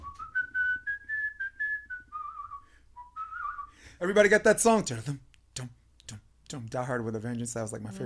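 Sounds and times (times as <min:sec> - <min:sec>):
person whistling a short tune: 0:00.0 - 0:03.9
speech: 0:04.0 - 0:05.8, 0:06.7 - 0:08.0.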